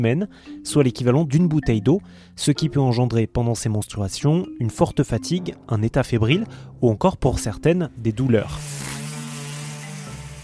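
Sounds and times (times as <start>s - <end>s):
speech: 0.0s - 8.9s
electric sander whirring in a workshop: 8.5s - 10.4s.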